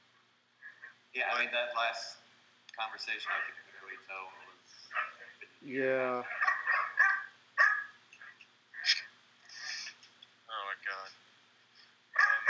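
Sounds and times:
speech: 0:01.2 - 0:02.2, 0:02.8 - 0:06.5
dogs barking: 0:03.2 - 0:03.6, 0:04.9 - 0:05.3, 0:06.2 - 0:08.0, 0:12.2 - 0:12.4
high drawn-out whining yelps: 0:06.3 - 0:08.0, 0:12.2 - 0:12.4.

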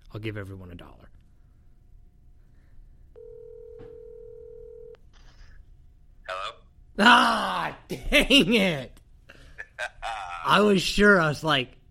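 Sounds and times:
speech: 0:00.1 - 0:01.2, 0:07.0 - 0:08.9, 0:09.8 - 0:11.8
steady electronic phone line tone: 0:03.2 - 0:05.0.

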